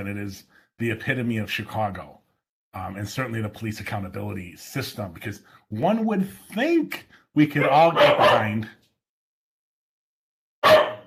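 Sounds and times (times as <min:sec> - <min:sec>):
speech: 0:00.0 - 0:08.8
dog barking: 0:07.6 - 0:08.7, 0:10.6 - 0:11.0.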